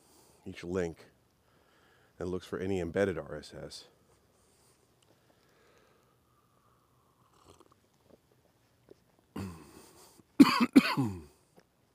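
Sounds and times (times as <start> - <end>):
speech: 0.4 - 1.1, 2.2 - 4.0
person coughing: 9.4 - 9.7, 10.4 - 11.3.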